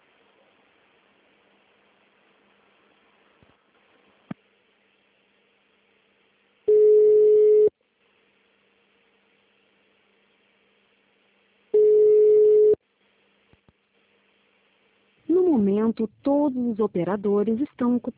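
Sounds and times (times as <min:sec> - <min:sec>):
ringback tones on a telephone line while a call is being transferred: 0:06.7 - 0:07.7, 0:11.8 - 0:12.8
speech: 0:15.6 - 0:18.1.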